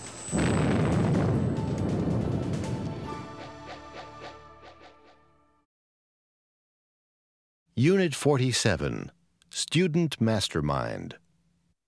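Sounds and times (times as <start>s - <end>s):
scattered crackles and smaller bangs: 0.0s - 3.2s
massive explosion of an oil rig: 0.3s - 3.2s
speech: 7.8s - 11.2s.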